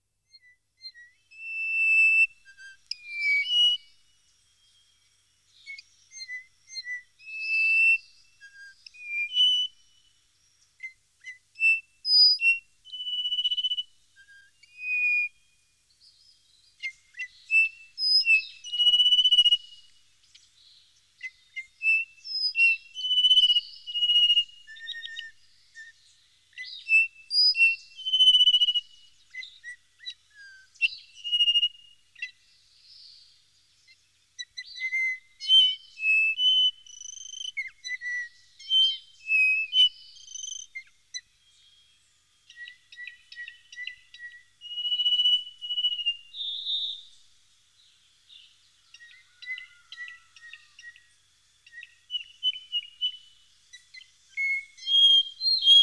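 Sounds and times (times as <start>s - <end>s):
bird whistling in the mountains: 0.4s - 4.0s, 5.6s - 9.8s, 10.8s - 15.4s, 16.8s - 19.9s, 21.2s - 25.9s, 26.6s - 32.3s, 34.4s - 41.6s, 42.5s - 47.2s, 48.9s - 51.1s, 51.7s - 55.8s.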